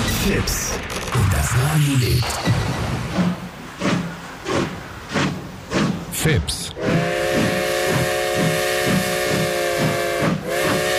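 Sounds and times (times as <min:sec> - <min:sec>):
speech: 0:00.2 - 0:03.3, 0:06.2 - 0:07.0
constant hiss of steam: 0:01.4 - 0:10.9
steam locomotive chuffing: 0:03.1 - 0:10.9
steam locomotive whistle: 0:06.8 - 0:10.9.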